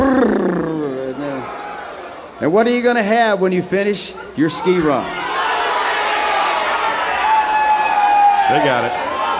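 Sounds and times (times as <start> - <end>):
large concert crowd yelling in answer to the performer: 1.1 - 2.4, 4.2 - 9.3
speech: 2.4 - 5.3, 8.5 - 9.0.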